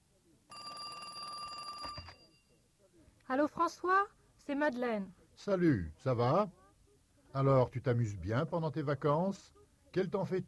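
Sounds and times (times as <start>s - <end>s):
telephone ringing with an electronic trill: 0.5s - 2.7s
speech: 3.3s - 6.6s, 7.3s - 10.4s.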